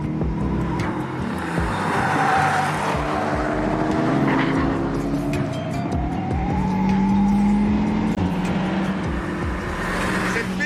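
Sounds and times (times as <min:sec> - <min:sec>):
Mégane RS race car engine roaring while lapping a circuit: 0:00.0 - 0:10.6
race car tire squeals: 0:00.6 - 0:07.8.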